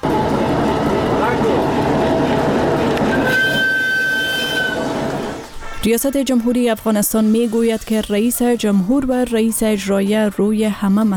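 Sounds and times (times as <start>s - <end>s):
freight train carrying goods from China rolling on rails into Hairatan Afghanistan: 0.0s - 5.8s
thin high metallic squeal of freight train: 0.0s - 5.8s
speech: 5.8s - 11.1s.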